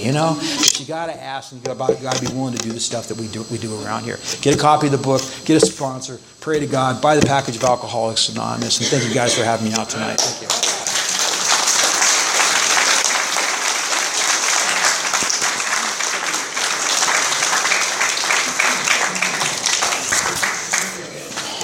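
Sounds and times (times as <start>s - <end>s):
speech: 0.0s - 10.7s
crowd applauding a speaker: 10.2s - 21.6s.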